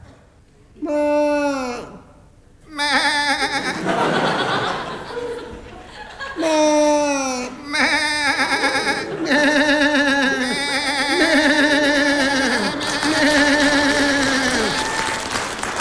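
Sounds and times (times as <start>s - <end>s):
human voice imitating a lamb bleating: 0.8s - 3.8s, 6.4s - 15.0s
laughter: 3.4s - 7.5s, 8.2s - 15.8s.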